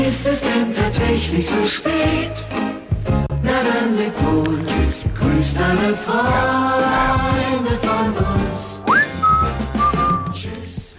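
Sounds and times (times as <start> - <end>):
speech: 0.1 - 2.7, 3.6 - 8.7
person whistling a short melodic phrase: 8.8 - 10.5.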